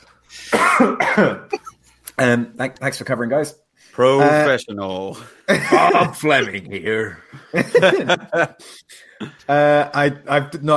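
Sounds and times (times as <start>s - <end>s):
person coughing: 0.4s - 1.7s
speech: 0.8s - 1.6s, 2.2s - 10.7s
laughter: 5.5s - 9.4s.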